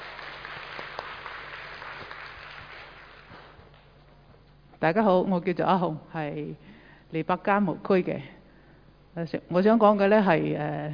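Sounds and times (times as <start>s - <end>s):
crowd applauding: 0.0s - 3.8s
speech: 4.8s - 8.4s, 9.2s - 10.9s.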